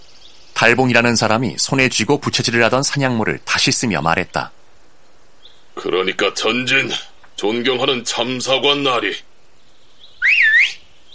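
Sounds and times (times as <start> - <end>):
speech: 0.6 - 4.6, 5.8 - 9.3
person whistling to call hunting dogs: 10.2 - 10.8.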